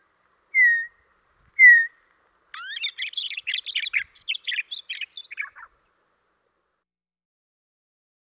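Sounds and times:
Western meadowlark chatter in western North America: 0:00.5 - 0:06.0.

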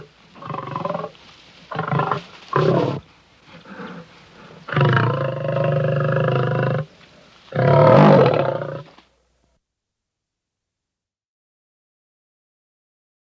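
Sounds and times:
lion roaring: 0:00.0 - 0:01.1, 0:01.7 - 0:03.0, 0:03.6 - 0:06.9, 0:07.5 - 0:09.0.

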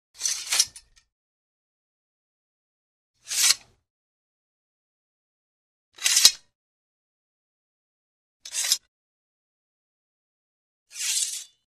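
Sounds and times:
light sword sliding into sheath: 0:00.2 - 0:01.1, 0:03.2 - 0:03.8, 0:06.0 - 0:06.5, 0:08.4 - 0:08.9, 0:10.9 - 0:11.6.

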